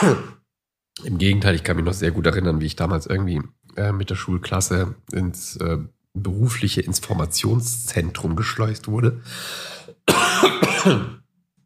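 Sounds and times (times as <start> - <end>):
harsh coughs: 0.0 - 0.4, 10.0 - 11.2
raspy throat clearing: 0.0 - 0.4, 10.1 - 11.2
speech: 1.0 - 11.2.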